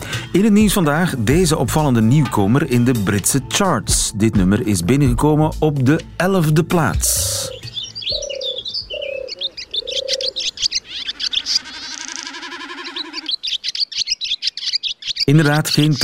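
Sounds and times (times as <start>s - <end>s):
songbirds singing: 0.0s - 16.0s
speech: 0.4s - 7.6s, 15.3s - 16.0s
low cooing call: 7.2s - 13.4s
dense buzzing warble: 11.0s - 13.4s.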